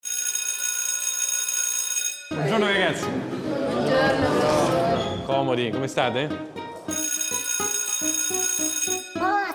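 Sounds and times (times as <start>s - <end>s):
school bell ringing: 0.0s - 2.6s, 6.9s - 9.4s
speech: 2.3s - 7.0s.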